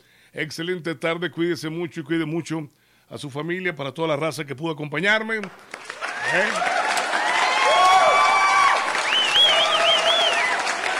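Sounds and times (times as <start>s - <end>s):
speech: 0.4s - 5.7s, 6.3s - 6.7s
crowd clapping: 5.4s - 10.9s
high whoops and whistle-like cheers: 6.0s - 10.9s.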